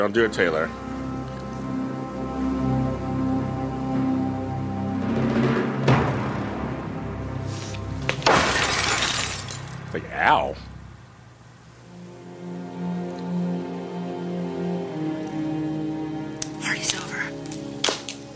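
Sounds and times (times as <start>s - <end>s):
speech: 0.0s - 0.8s, 10.2s - 10.7s
droning musical backdrop: 0.0s - 18.3s
glass shattering: 8.2s - 9.9s
glass shards tinkling: 8.5s - 9.8s.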